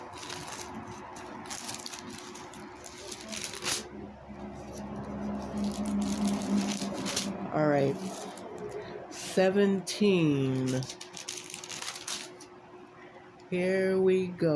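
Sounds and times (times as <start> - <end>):
sheet of paper being unfolded crinkling: 0.0 - 8.9, 10.3 - 12.6
faint steady hum: 0.0 - 14.5
speech: 7.6 - 8.2, 9.4 - 11.0, 13.5 - 14.5.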